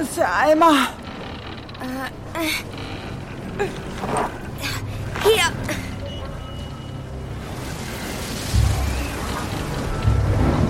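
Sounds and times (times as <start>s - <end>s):
speech: 0.1s - 1.0s, 1.8s - 3.0s, 3.6s - 5.8s
steady heavy rain in a storm at sea: 7.3s - 10.6s.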